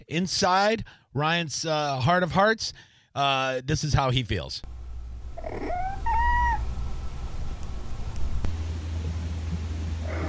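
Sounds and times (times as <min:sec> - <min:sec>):
speech: 0:00.1 - 0:04.7
steady low rumble: 0:04.6 - 0:10.2
cat in heat yowling: 0:05.4 - 0:06.7, 0:10.1 - 0:10.2.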